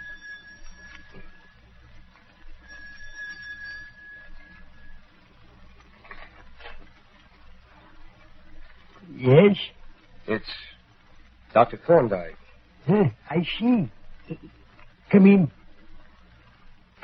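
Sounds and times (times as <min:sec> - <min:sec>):
doorbell ringing: 0:00.0 - 0:01.5, 0:02.6 - 0:04.9
speech: 0:09.2 - 0:10.7, 0:11.6 - 0:15.6.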